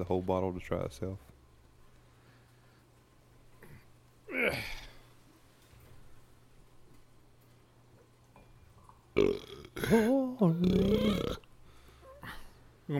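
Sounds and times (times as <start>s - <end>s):
speech: 0.0s - 1.3s
short burp: 3.6s - 5.0s, 9.2s - 11.5s
long loud drawn-out belch with a rumbling gurgling pitch: 4.3s - 4.9s, 9.2s - 11.5s.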